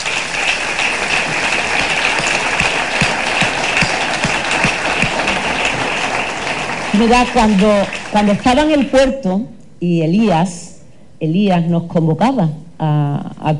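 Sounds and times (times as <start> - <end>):
crowd applauding: 0.0 - 8.9
speech: 7.0 - 10.6, 11.2 - 13.5.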